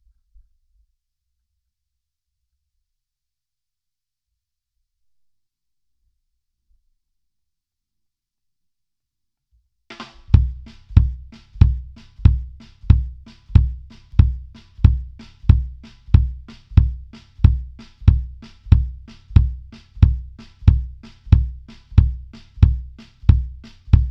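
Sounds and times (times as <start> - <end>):
kick drums: 9.9 - 24.1.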